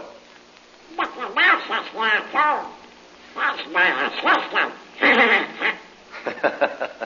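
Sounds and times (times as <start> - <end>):
raspy cartoonish duck voice quacking and squawking: 0.9 - 5.9
speech: 1.3 - 2.8, 3.4 - 5.5
laughter: 6.2 - 7.0.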